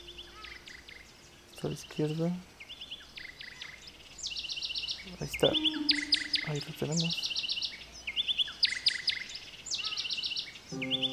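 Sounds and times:
bird in an audio game chirping: 0:00.0 - 0:11.1
speech: 0:01.6 - 0:02.5, 0:05.1 - 0:07.4, 0:10.7 - 0:11.1
short harmonic tone: 0:05.5 - 0:06.9.

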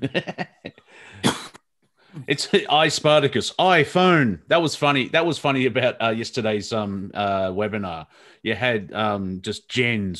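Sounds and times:
speech: 0:00.0 - 0:00.5, 0:02.3 - 0:10.1
person coughing harshly: 0:01.1 - 0:01.6.

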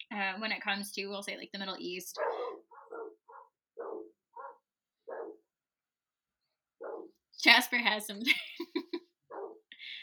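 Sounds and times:
speech: 0:00.3 - 0:02.5, 0:07.4 - 0:08.7
dog barking: 0:02.2 - 0:05.5, 0:06.8 - 0:07.2, 0:09.3 - 0:09.6.

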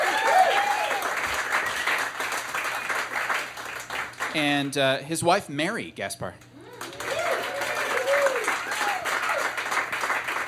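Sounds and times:
cheers and whoops: 0:00.0 - 0:01.8, 0:06.6 - 0:09.6
crowd applauding: 0:00.0 - 0:04.7, 0:06.6 - 0:10.4
speech: 0:04.4 - 0:06.4.

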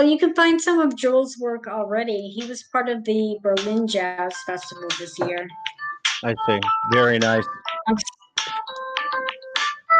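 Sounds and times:
speech: 0:00.0 - 0:08.2
phone ringtone melody of bright chiming notes from incoming call: 0:04.0 - 0:09.9.

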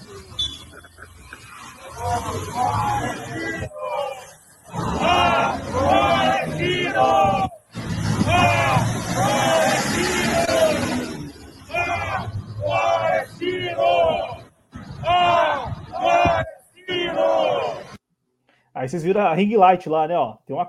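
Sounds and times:
large crowd in Porto Alegre shouting and chanting at night: 0:01.8 - 0:18.0
speech: 0:19.0 - 0:20.6.

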